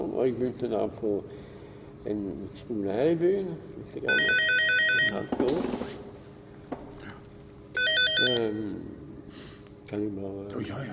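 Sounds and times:
speech: 0:00.2 - 0:06.1, 0:08.2 - 0:10.9
old cordless house phone ringing with an electronic warbling trill: 0:04.1 - 0:05.3, 0:07.8 - 0:08.5.

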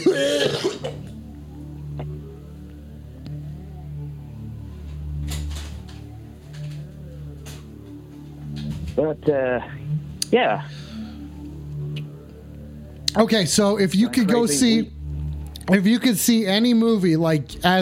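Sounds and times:
hard harsh cough: 0:00.0 - 0:01.0
steady low rumbling drone: 0:00.0 - 0:17.8
speech: 0:09.0 - 0:10.8, 0:13.2 - 0:14.9, 0:15.7 - 0:17.8.

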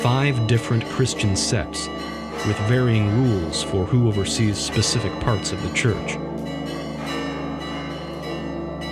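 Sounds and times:
speech: 0:00.0 - 0:06.3
church bells ringing: 0:00.0 - 0:08.9.

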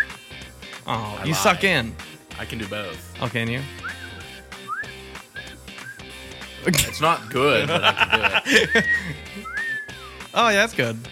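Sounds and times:
speech: 0:00.8 - 0:03.8, 0:06.6 - 0:09.2, 0:10.4 - 0:11.0
laughter: 0:01.0 - 0:01.7, 0:06.7 - 0:09.6
person whistling a catcall: 0:03.8 - 0:06.1, 0:08.6 - 0:10.2.

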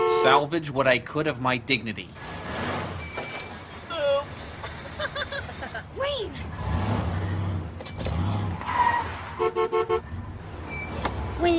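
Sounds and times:
car horn honks: 0:00.0 - 0:00.4, 0:09.3 - 0:10.1
speech: 0:00.2 - 0:02.5, 0:11.4 - 0:11.5
car engine rumbling: 0:01.9 - 0:11.5
high car brake squeal: 0:02.2 - 0:04.3, 0:07.2 - 0:11.4
laughter: 0:04.6 - 0:06.0.

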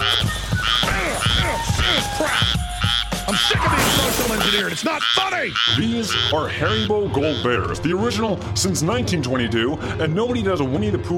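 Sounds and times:
frogs croaking in buzzy bubbling trills: 0:00.0 - 0:08.0
speech: 0:04.6 - 0:11.1.

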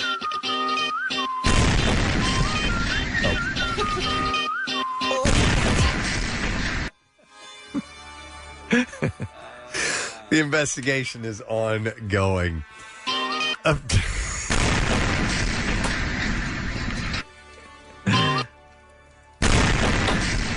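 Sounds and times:
whistling tonal backdrop: 0:00.0 - 0:01.6, 0:02.2 - 0:05.3
roaring explosion blasts: 0:01.4 - 0:04.3, 0:05.2 - 0:06.9, 0:14.5 - 0:17.2, 0:19.4 - 0:20.5
laughter: 0:03.3 - 0:04.4, 0:08.7 - 0:10.4, 0:18.1 - 0:18.5
speech: 0:10.4 - 0:12.8, 0:13.6 - 0:14.1.

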